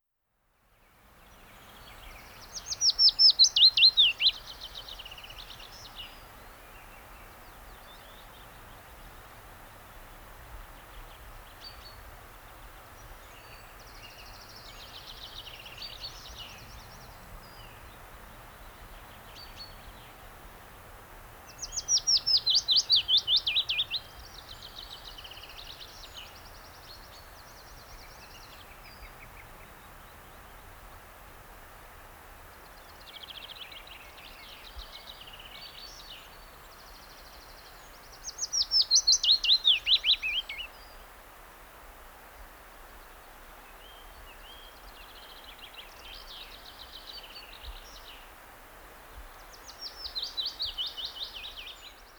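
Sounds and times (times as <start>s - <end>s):
willow warbler singing: 0.8s - 9.3s, 10.6s - 20.5s, 21.3s - 30.9s, 32.5s - 41.1s, 49.2s - 52.1s.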